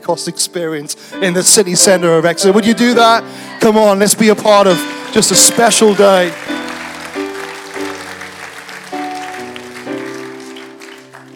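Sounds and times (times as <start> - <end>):
speech: 0.0 - 6.7
audience clapping: 4.2 - 11.3
sustained organ-like chords: 4.6 - 11.3.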